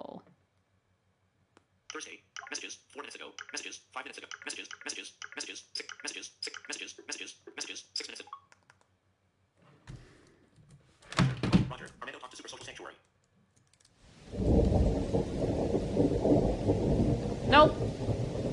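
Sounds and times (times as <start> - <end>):
speech: 2.0 - 7.6
steady heavy rain: 14.1 - 18.5
sharp cracks of thunder: 14.2 - 18.5.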